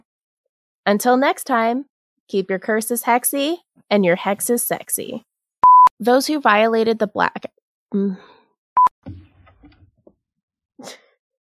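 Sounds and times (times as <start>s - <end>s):
speech: 0.8s - 5.3s, 6.0s - 8.4s
brief electronic beep: 5.6s - 5.9s, 8.8s - 9.0s.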